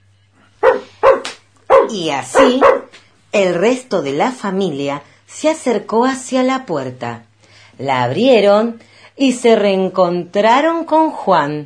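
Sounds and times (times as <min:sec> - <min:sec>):
faint steady low hum: 0:00.0 - 0:11.6
dog barking loudly: 0:00.6 - 0:03.0
speech: 0:01.9 - 0:11.6.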